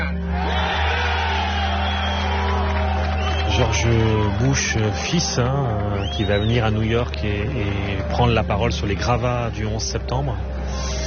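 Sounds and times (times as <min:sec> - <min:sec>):
large crowd shouting and cheering at the rubble of the September 11 attacks in New York: 0:00.0 - 0:11.0
speech: 0:03.6 - 0:11.0.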